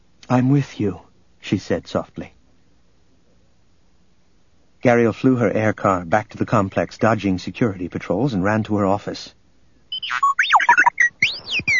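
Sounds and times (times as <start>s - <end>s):
speech: 0.3s - 2.4s, 4.8s - 9.4s, 10.0s - 10.3s
small domed robotic droid beeping beside a desk: 9.9s - 11.7s.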